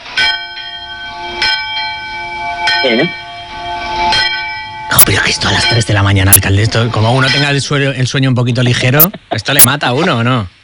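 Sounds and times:
church bells ringing: 0.0 - 7.8
speech: 2.8 - 3.2, 5.0 - 10.6.

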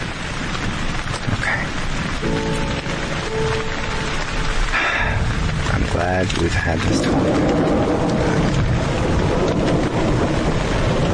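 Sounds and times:
rain: 0.0 - 11.1
water dripping from a leak: 2.0 - 10.1
speech: 6.2 - 7.8.

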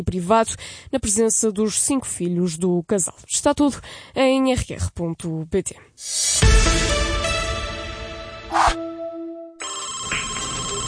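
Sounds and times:
speech: 0.0 - 7.2
telephone ringing with a bright electronic ringtone: 9.6 - 10.8.

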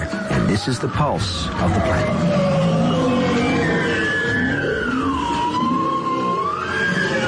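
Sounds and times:
speech: 0.5 - 2.8
bowhead whale calls underwater: 1.6 - 7.2.

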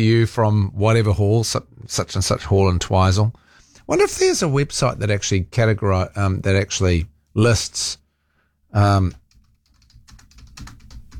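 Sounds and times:
speech: 0.0 - 8.0, 8.7 - 9.2
typing on a computer keyboard: 9.2 - 11.1.

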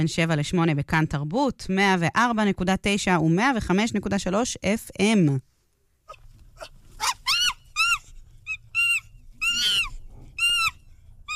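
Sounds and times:
speech: 0.0 - 5.5
monkey calls: 6.1 - 11.3.

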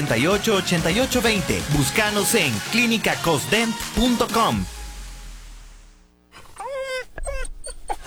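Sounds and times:
speech: 0.1 - 4.8
dog whimpering with a rising, whining cry: 6.4 - 8.0.

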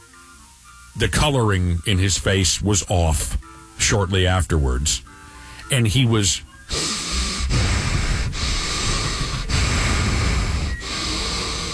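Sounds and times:
speech: 1.0 - 6.9
person imitating a man's heavy labored breathing: 6.7 - 11.7.

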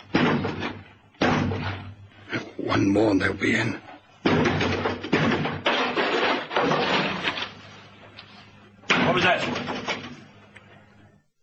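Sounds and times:
door swinging and banging with a heavy thud: 0.0 - 2.0, 4.2 - 7.6, 8.9 - 10.3
speech: 2.7 - 4.5.

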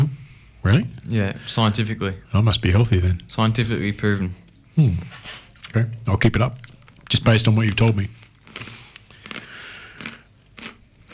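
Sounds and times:
speech: 0.6 - 8.7
crisp crunchy chewing of food: 6.6 - 11.1.

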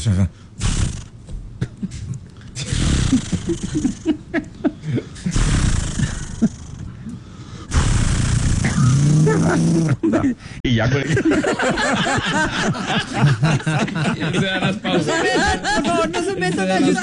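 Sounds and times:
speech: 0.0 - 0.9, 3.5 - 6.5, 9.3 - 17.0
laughter: 1.6 - 5.4, 9.1 - 17.0
person vocally imitating a chainsaw starting and cutting: 2.6 - 3.9, 5.3 - 6.6, 7.7 - 10.0.

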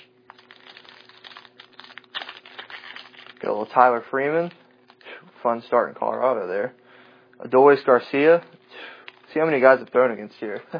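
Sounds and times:
trading card pack wrapper crinkling as it is opened: 0.0 - 5.2, 8.8 - 10.6
speech: 3.4 - 4.6, 5.4 - 6.8, 7.4 - 8.6, 9.3 - 10.7.

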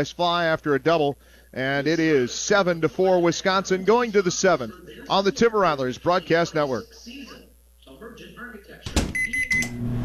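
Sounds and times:
speech: 0.0 - 7.4
microwave oven starting with a sharp clunk: 8.9 - 9.8
microwave oven steady electric hum: 8.9 - 10.0
high electronic microwave beeps: 9.1 - 9.8.

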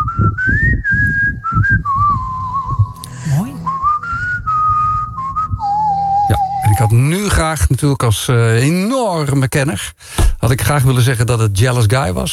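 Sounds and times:
person whistling a tune: 0.0 - 7.4
speech: 7.0 - 12.3.

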